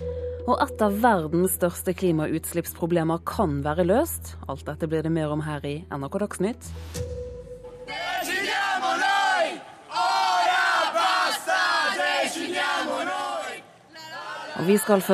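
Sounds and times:
speech: 0.5s - 7.2s, 14.6s - 15.1s
large crowd cheering and chanting in unison: 7.9s - 15.1s.

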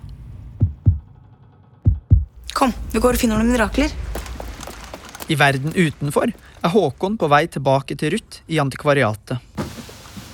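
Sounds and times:
deep lub-dub heartbeat thumps: 0.5s - 1.1s, 1.8s - 4.7s
speech: 2.6s - 4.2s, 5.3s - 9.5s.

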